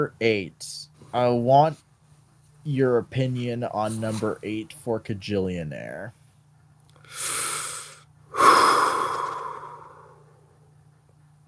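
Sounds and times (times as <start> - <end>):
speech: 0.0 - 1.8, 2.6 - 6.2
exaggerated mock labor breathing: 7.1 - 10.5.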